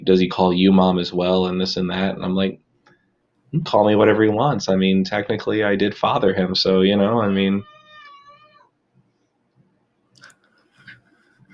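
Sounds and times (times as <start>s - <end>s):
speech: 0.0s - 2.6s, 3.5s - 7.7s
cat meowing for attention: 7.6s - 8.7s.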